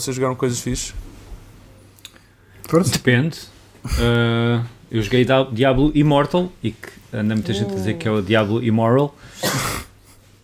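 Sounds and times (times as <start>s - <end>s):
speech: 0.0s - 1.1s, 2.7s - 9.9s
person sneezing: 9.3s - 10.0s.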